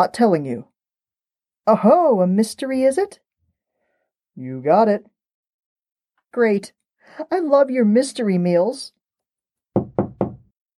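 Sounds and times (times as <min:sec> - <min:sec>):
speech: 0:00.0 - 0:00.7, 0:01.6 - 0:03.2, 0:04.4 - 0:05.1, 0:06.3 - 0:09.0
knocking on a door: 0:09.8 - 0:10.5.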